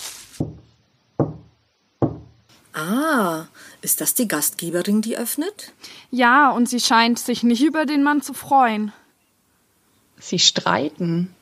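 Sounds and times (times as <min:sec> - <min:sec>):
firm knocking on a door: 0:00.4 - 0:02.4
speech: 0:02.8 - 0:09.0, 0:10.2 - 0:11.4.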